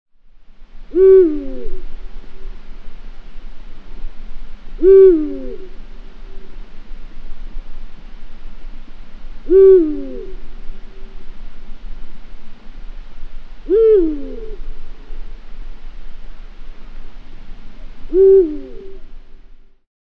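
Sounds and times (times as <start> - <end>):
eagle owl calling: 0.9 - 2.5, 4.8 - 6.6, 9.4 - 11.3, 13.6 - 14.7, 17.8 - 19.1.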